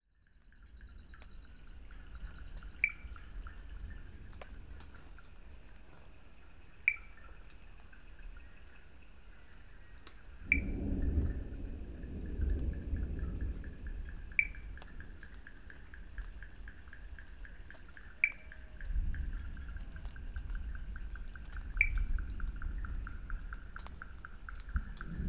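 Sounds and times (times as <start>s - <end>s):
Wood Frogs in Sri Lanka: 0.2s - 25.2s
thunder in Sri Lanka: 10.4s - 16.6s, 18.8s - 25.2s.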